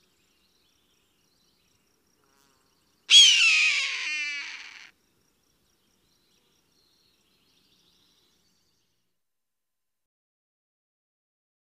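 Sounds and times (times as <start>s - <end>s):
hawk giving a harsh hoarse scream: 3.1s - 4.9s.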